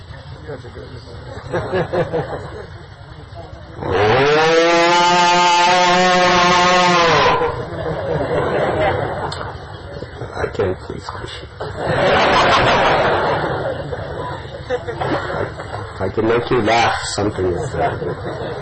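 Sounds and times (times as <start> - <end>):
murmur of crowd chatter: 0.0 - 4.2, 7.0 - 18.6
speech: 0.5 - 5.8, 10.6 - 13.5, 14.7 - 18.6
laughter: 1.2 - 3.4, 7.4 - 10.8, 11.6 - 16.0, 17.3 - 18.6
cow mooing: 3.8 - 7.7.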